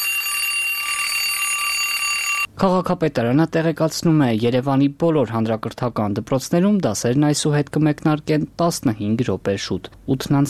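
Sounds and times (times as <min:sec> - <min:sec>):
alarm clock ringing: 0:00.0 - 0:02.5
speech: 0:02.6 - 0:10.4.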